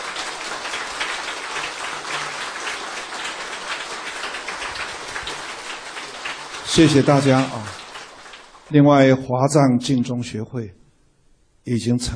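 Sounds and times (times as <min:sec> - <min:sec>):
large crowd applauding: 0:00.0 - 0:08.8
speech: 0:06.8 - 0:07.7, 0:08.7 - 0:10.8, 0:11.6 - 0:12.1.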